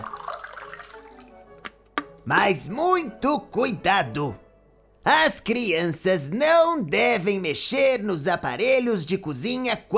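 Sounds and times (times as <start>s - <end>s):
water poured into blender container: 0.0s - 1.4s
speech: 2.3s - 4.4s, 5.0s - 9.9s.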